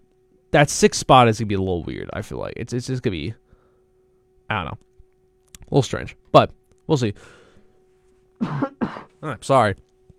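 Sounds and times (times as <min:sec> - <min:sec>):
faint steady hum: 0:00.0 - 0:10.1
speech: 0:00.5 - 0:03.4, 0:04.5 - 0:04.9, 0:05.7 - 0:07.4, 0:08.4 - 0:09.9
person coughing: 0:08.4 - 0:09.2
throat clearing: 0:08.4 - 0:09.2.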